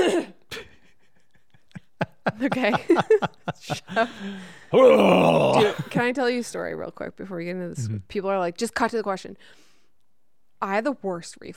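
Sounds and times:
laughter: 0.7 - 4.5
speech: 2.3 - 9.6, 10.6 - 11.5
person clearing throat: 4.8 - 6.0, 7.8 - 8.0.

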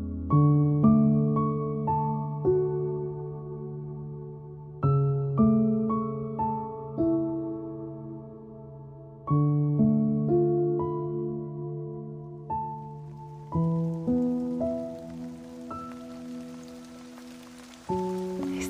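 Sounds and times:
slow sustained piano chords: 0.0 - 18.6
steady rain: 12.6 - 18.6.

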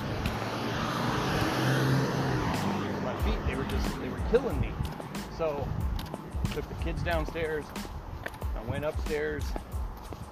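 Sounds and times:
car passing by: 0.0 - 5.4
speech: 3.8 - 5.9, 6.6 - 7.9, 8.6 - 9.6.

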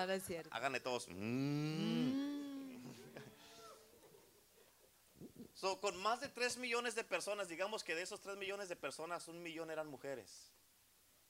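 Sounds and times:
speech: 0.0 - 3.4, 5.2 - 10.6
people imitating cows mooing: 1.2 - 3.9.

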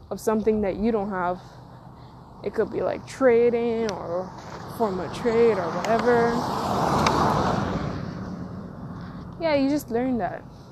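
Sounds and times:
speech: 0.1 - 1.6, 2.4 - 7.0, 9.4 - 10.5
car passing by with engine and tire noise: 2.6 - 10.6.

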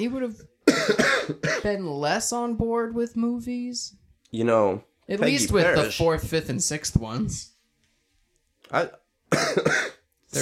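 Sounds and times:
speech: 0.0 - 7.5, 8.7 - 10.4
person coughing: 0.7 - 1.7, 9.3 - 10.4.

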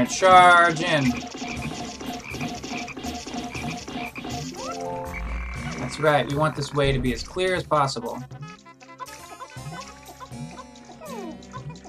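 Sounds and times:
speech: 0.0 - 1.4, 5.9 - 8.4
video game frog croaking: 3.6 - 7.4
rising electronic tone: 4.6 - 5.9.

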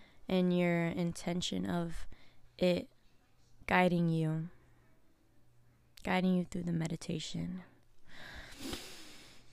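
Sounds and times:
speech: 0.3 - 2.9, 3.7 - 4.6, 6.0 - 8.7
deep breath in through the nose: 8.1 - 9.5.

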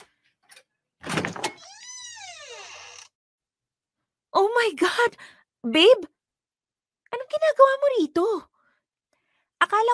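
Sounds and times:
door creaking open: 1.0 - 3.2
speech: 4.6 - 6.2, 7.2 - 8.5, 9.6 - 9.9.

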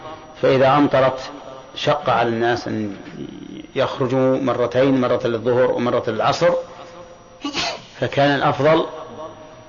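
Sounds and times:
speech: 0.4 - 6.8, 7.4 - 9.0
sneeze: 7.4 - 8.0.

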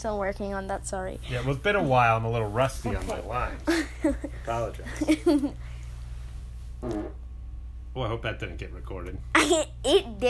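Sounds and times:
speech: 0.0 - 5.7, 6.8 - 7.2, 8.0 - 10.2
steady low hum: 0.0 - 10.2
short buzzy fart: 6.8 - 7.4.

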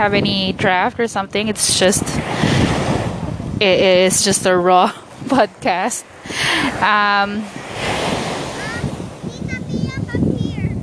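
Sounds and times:
speech: 0.0 - 2.6, 3.6 - 7.9
sea waves surf: 0.0 - 10.8
child's voice: 8.5 - 10.8.

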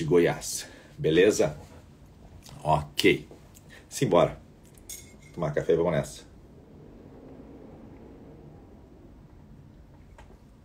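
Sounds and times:
speech: 0.0 - 1.7, 2.6 - 3.3, 3.9 - 4.4, 5.4 - 6.3
strong wind roaring across the microphone: 6.4 - 9.8.

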